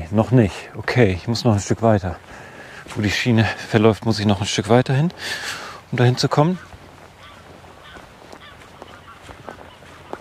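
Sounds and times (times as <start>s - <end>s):
hissy outdoor background: 0.0s - 10.1s
speech: 0.1s - 6.7s
geese honking: 5.3s - 10.1s.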